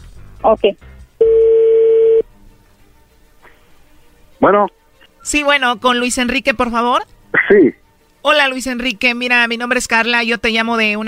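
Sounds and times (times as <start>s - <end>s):
speech: 0.4s - 0.9s, 4.4s - 11.0s
telephone dial tone while placing a call: 1.2s - 2.2s.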